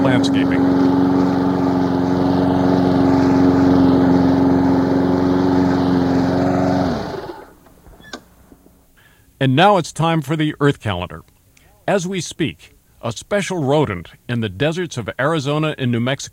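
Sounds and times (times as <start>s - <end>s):
lawnmower engine running: 0.0s - 8.1s
speech: 0.2s - 0.9s, 9.4s - 11.3s, 11.9s - 16.3s.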